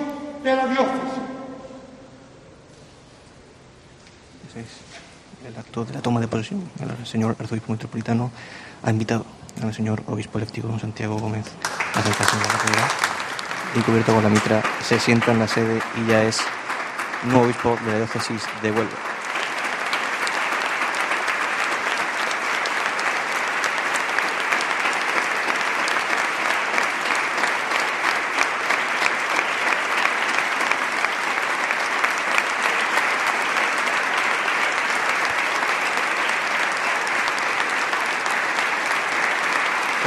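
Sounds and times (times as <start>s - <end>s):
speech: 0.4s - 1.3s, 4.6s - 13.1s, 13.7s - 16.6s, 17.2s - 19.1s
large standing crowd applauding in cathedral: 11.6s - 40.0s.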